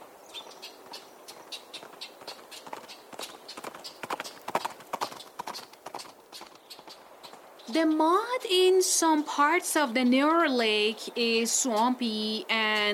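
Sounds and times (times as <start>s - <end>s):
faint noise: 0.0s - 12.9s
horse hooves clip-clopping on hard ground: 0.3s - 7.8s
speech: 7.7s - 12.9s.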